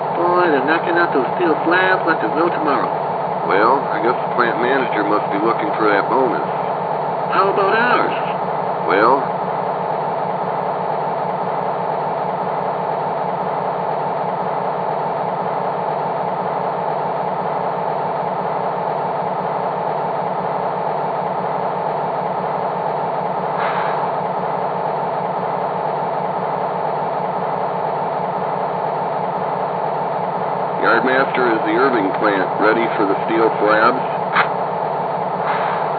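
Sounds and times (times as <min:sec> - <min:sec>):
diesel yard engine idling in a railway yard serving a steel plant: 0:00.0 - 0:35.9
speech: 0:00.4 - 0:06.6, 0:07.3 - 0:08.3, 0:08.9 - 0:09.3, 0:31.4 - 0:34.3.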